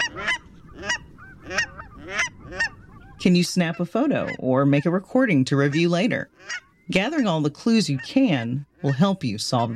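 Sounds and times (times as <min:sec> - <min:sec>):
cackling goose nasal yelping honks: 0:00.0 - 0:05.0, 0:05.6 - 0:06.7
speech: 0:03.2 - 0:09.7.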